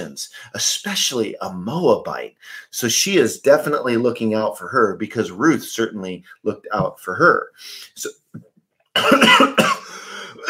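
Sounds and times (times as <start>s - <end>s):
speech: 0.0s - 10.4s
person coughing after swallowing the wrong way: 9.0s - 10.4s.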